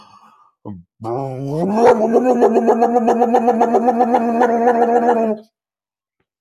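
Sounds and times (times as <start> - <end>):
person imitating a snowmobile engine revving: 1.0 - 5.4.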